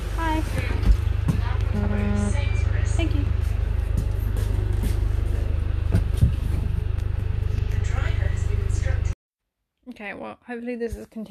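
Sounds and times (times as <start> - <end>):
deep engine drone inside a moving bus: 0.0 - 9.2
road rumble inside a moving bus: 0.4 - 9.2
speech: 10.0 - 11.2.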